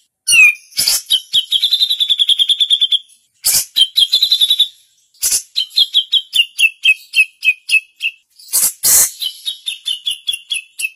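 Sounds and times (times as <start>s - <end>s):
female grey-cheeked bulbul chirping: 0.3s - 10.9s.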